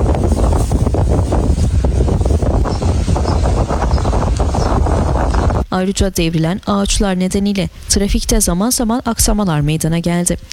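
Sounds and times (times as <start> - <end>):
strong windstorm wind roaring through a city and buffeting the microphone: 0.0 - 10.5
speech: 5.8 - 10.5.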